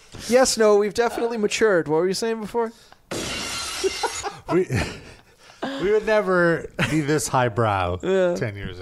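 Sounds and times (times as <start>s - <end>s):
speech: 0.2s - 3.0s, 4.5s - 5.0s, 5.8s - 8.7s
glass shattering: 3.1s - 4.5s
people laughing: 3.8s - 7.4s.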